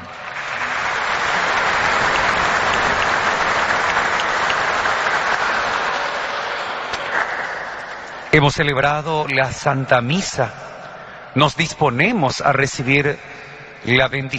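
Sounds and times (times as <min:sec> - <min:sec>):
large crowd applauding: 0:00.0 - 0:08.8
speech: 0:08.4 - 0:10.7, 0:11.4 - 0:14.3.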